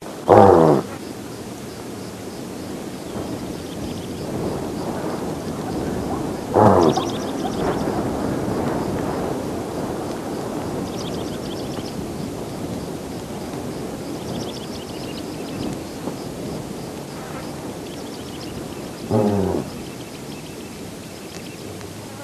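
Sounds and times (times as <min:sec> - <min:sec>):
steady background noise: 0:00.0 - 0:22.2
cheetah giving throaty calls: 0:00.3 - 0:01.0, 0:03.9 - 0:08.5, 0:19.0 - 0:20.0.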